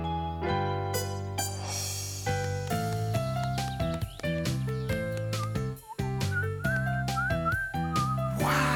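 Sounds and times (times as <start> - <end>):
instrumental backing music: 0.0 - 8.7
person whistling a tune: 5.3 - 8.6.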